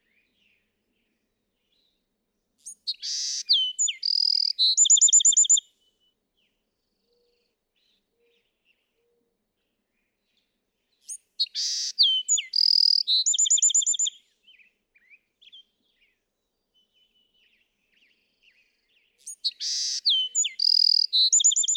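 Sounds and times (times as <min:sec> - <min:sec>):
Bewick's wren singing: 0:02.6 - 0:05.6, 0:11.4 - 0:14.1, 0:19.2 - 0:21.7.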